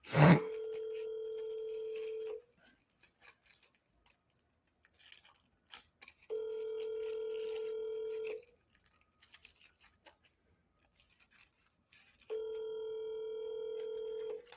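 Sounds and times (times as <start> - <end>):
phone line ringback tones while waiting for an answer: 0.2 - 2.4, 6.3 - 8.4, 12.3 - 14.4.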